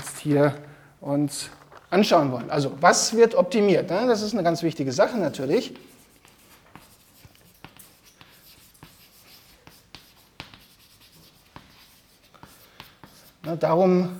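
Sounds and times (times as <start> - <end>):
speech: 0.2 - 6.0, 13.5 - 14.1
writing on a board during a university lecture: 5.1 - 14.1.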